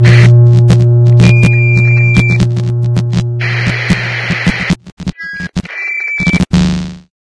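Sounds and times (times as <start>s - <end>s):
ambient transmission start sound: 0.0s - 4.8s.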